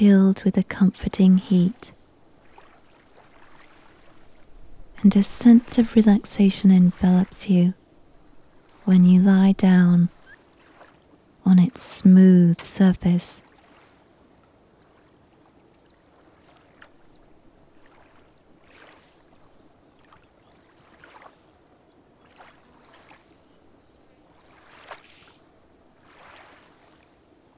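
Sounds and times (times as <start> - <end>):
speech: 0.0 - 2.0, 5.0 - 7.8, 8.8 - 10.2, 11.4 - 13.4
water lapping against a hull: 0.0 - 27.5.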